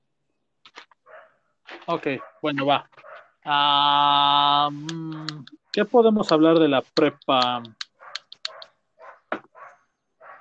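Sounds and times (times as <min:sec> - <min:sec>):
dogs barking, some high and yappy, others fuller: 0:01.1 - 0:01.4, 0:02.1 - 0:03.4, 0:07.8 - 0:10.4
speech: 0:01.9 - 0:07.8.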